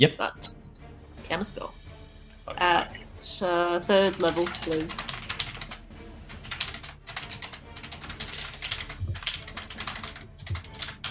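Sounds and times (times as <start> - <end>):
speech: 0.0 - 0.6, 1.3 - 1.8, 2.5 - 5.1
rapid typing on a computer keyboard: 4.1 - 11.0.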